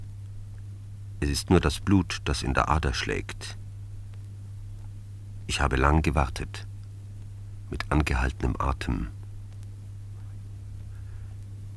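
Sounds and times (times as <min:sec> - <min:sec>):
faint crackles: 0:00.0 - 0:11.7
low constant hum: 0:00.0 - 0:11.7
white noise static hiss in headphones: 0:00.0 - 0:11.7
speech: 0:01.2 - 0:03.6, 0:05.5 - 0:06.7, 0:07.7 - 0:09.2.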